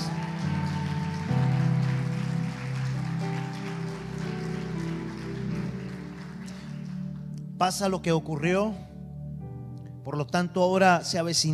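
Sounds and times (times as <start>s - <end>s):
audience applause: 0.0s - 7.2s
speech: 7.6s - 8.9s, 10.1s - 11.5s.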